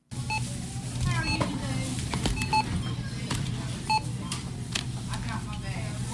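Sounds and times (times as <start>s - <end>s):
busy store hum: 0.1s - 6.1s
low chatter at a crowded checkout: 0.2s - 6.1s
electronic supermarket cash register beeps: 1.2s - 1.5s, 2.4s - 3.0s, 3.9s - 4.4s.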